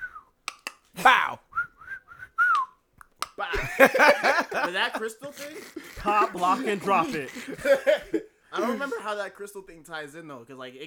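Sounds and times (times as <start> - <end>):
person whistling a signal of short notes: 0.0 - 0.3, 1.5 - 2.8
laughter: 3.5 - 9.3
speech: 3.8 - 10.8.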